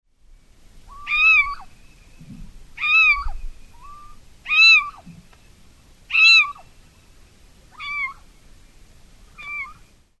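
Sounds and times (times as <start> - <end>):
little owl: 0.9 - 2.2, 2.8 - 5.2, 6.1 - 6.7, 7.7 - 8.3, 9.3 - 9.9.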